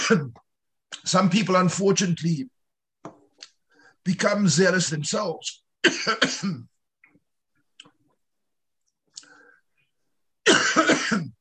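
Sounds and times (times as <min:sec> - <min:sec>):
speech: 0:00.1 - 0:00.4, 0:01.0 - 0:03.2, 0:04.0 - 0:06.7, 0:10.8 - 0:11.3
loud coughs: 0:05.8 - 0:06.7, 0:10.5 - 0:11.3.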